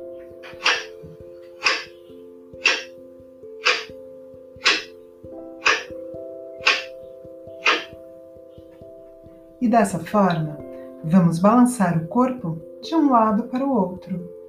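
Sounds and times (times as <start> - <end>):
soft sustained musical drone: 0.0 - 14.4
pendulum clock ticking: 0.4 - 9.6
speech: 9.6 - 14.4.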